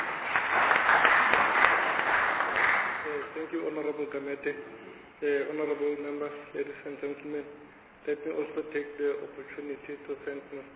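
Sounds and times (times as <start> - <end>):
audience at a formal session applauding two presenters: 0.0 - 3.2
speech: 3.5 - 10.7.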